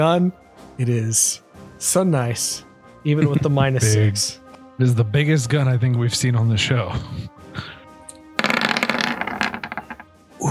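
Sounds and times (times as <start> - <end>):
speech: 0.0 - 7.8
dice rattling: 8.4 - 10.0.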